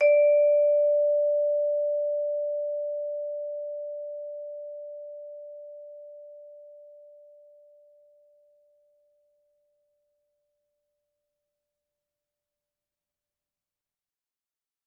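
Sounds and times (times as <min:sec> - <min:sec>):
soft vibraphone note D4 struck with soft mallets: 0:00.0 - 0:07.8.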